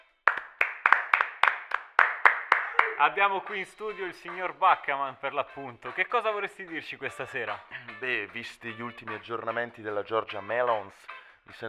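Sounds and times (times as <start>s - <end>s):
hands clapping as applause in a studio: 0.0s - 4.4s
speech: 3.0s - 11.6s.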